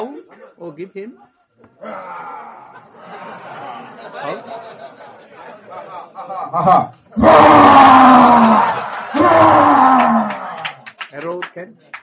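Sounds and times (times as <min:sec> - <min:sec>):
speech: 0:00.0 - 0:09.8, 0:11.2 - 0:12.0
laughter: 0:02.1 - 0:06.8, 0:08.4 - 0:10.8
voice making drawn-out roaring bellows sliding downward in pitch: 0:06.6 - 0:10.6.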